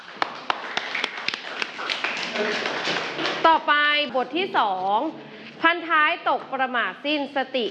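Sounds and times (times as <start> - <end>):
small group of students clapping: 0.0 - 3.4
speech: 2.4 - 2.7, 3.5 - 7.7.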